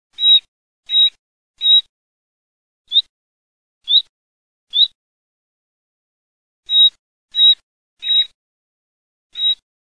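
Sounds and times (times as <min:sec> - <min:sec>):
nightingale singing: 0:00.2 - 0:01.9, 0:02.9 - 0:03.1, 0:03.8 - 0:04.1, 0:04.7 - 0:05.0, 0:06.6 - 0:08.4, 0:09.3 - 0:09.6.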